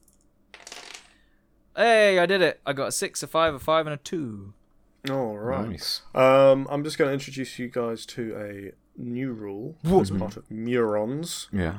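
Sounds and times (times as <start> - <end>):
dice rolling across a surface: 0.0 - 1.2
speech: 1.8 - 11.7.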